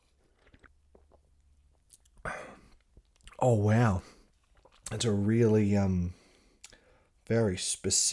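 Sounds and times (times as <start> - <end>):
soft mouth clicks and faint smacks: 0.1 - 3.4, 4.3 - 5.2, 6.6 - 6.8
speech: 3.4 - 4.1, 4.9 - 6.2, 7.3 - 8.1.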